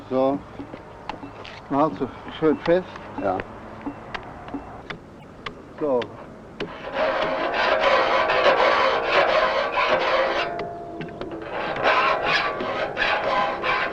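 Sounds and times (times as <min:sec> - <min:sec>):
speech: 0:00.1 - 0:00.8, 0:01.7 - 0:04.0, 0:05.8 - 0:07.0
broad flat saw file rasping across saw teeth, sharpening them: 0:06.7 - 0:10.5, 0:11.6 - 0:13.9.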